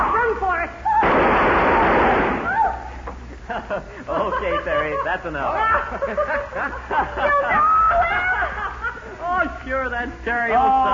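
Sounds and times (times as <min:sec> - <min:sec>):
gunshots in a radio drama shootout with bandits: 0:01.0 - 0:02.5
laughter: 0:03.4 - 0:09.6, 0:10.5 - 0:10.9
speech: 0:03.7 - 0:08.6, 0:09.4 - 0:10.9.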